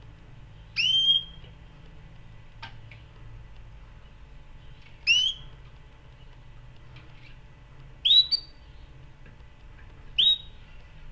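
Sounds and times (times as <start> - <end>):
canary chirping: 0.7 - 1.4, 4.6 - 5.5, 8.0 - 8.9, 10.2 - 10.7.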